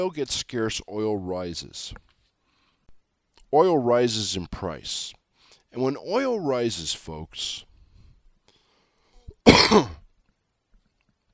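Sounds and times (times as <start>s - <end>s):
speech: 0.0s - 2.1s, 3.5s - 7.7s, 9.4s - 10.0s
faint breath: 2.2s - 3.0s, 5.3s - 5.7s, 7.7s - 9.4s
short harsh cough: 9.4s - 10.1s.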